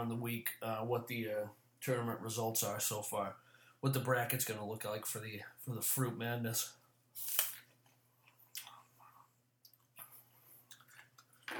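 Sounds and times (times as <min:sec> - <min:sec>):
speech: 0:00.0 - 0:07.5
person chewing a crisp Red Delicious apple: 0:07.2 - 0:08.9.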